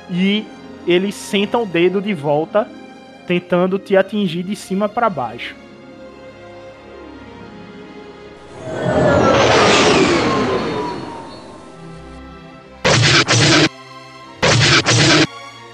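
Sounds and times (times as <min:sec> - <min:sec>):
speech: 0:00.1 - 0:05.6
sweeping sci-fi laser blast with descending whine: 0:08.6 - 0:11.9, 0:12.9 - 0:13.7, 0:14.4 - 0:15.3
rapid double-shot energy weapon fire: 0:12.9 - 0:13.7, 0:14.4 - 0:15.3.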